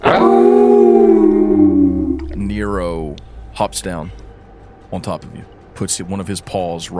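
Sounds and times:
wolf howling: 0:00.0 - 0:03.2
speech: 0:03.6 - 0:04.2, 0:04.9 - 0:06.9.

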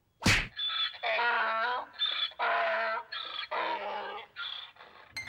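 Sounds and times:
sharp punch landing on a donkey: 0:00.2 - 0:00.5
donkey braying and growling agitatedly: 0:00.5 - 0:05.2.

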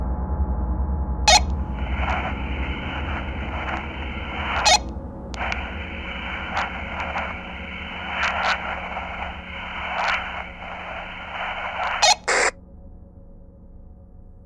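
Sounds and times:
low constant rumble: 0:01.0 - 0:12.0
crackling two-way radio static: 0:01.3 - 0:12.5
sharp clicks and pops: 0:01.3 - 0:12.5.

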